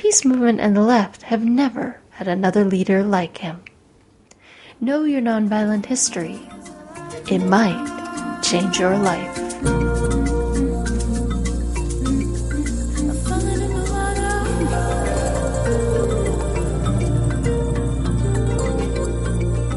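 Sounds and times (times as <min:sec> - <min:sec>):
speech: 0:00.1 - 0:03.7, 0:04.8 - 0:09.9
instrumental music with deep drone, layered melodic tones and plucked notes: 0:05.7 - 0:19.7.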